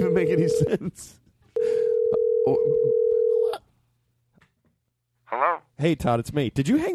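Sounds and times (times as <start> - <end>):
speech: 0.1 - 1.2, 2.4 - 3.0, 5.3 - 6.9
telephone dial tone: 1.6 - 3.6.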